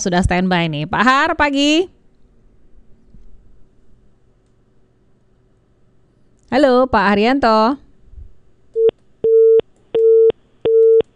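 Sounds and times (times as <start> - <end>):
speech: 0.0 - 2.0, 6.5 - 7.8
telephone busy tone beeps after a disconnected call: 8.8 - 11.1.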